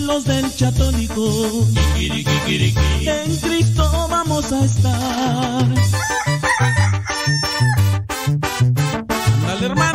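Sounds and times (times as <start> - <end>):
speech: 0.0 - 6.7
steady rhythmic musical beat with low bass notes: 0.0 - 9.9
rooster crowing: 5.9 - 7.9.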